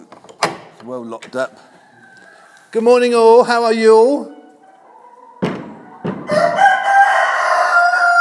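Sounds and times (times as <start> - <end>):
speech: 0.8 - 1.8, 2.7 - 4.4
rooster crowing loudly: 1.7 - 2.8, 5.0 - 8.1
dull thumps: 5.4 - 6.4.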